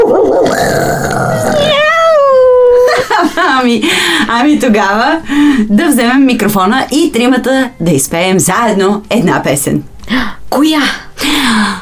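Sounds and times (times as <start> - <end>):
person imitating a cat meowing: 0.4 - 2.7
speech: 3.6 - 11.8.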